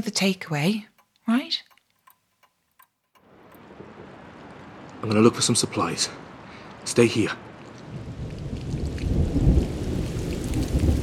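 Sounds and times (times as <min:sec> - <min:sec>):
speech: 0:00.0 - 0:01.7, 0:05.0 - 0:06.2, 0:06.8 - 0:07.5
heavy rain pouring in a thunderstorm: 0:03.6 - 0:11.0
deep rolling thunder: 0:08.0 - 0:11.0.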